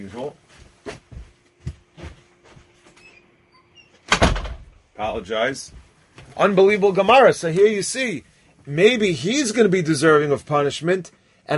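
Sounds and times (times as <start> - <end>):
speech: 0.0 - 1.1, 5.0 - 5.8, 6.4 - 11.5
door knocks and rattles: 4.1 - 4.8.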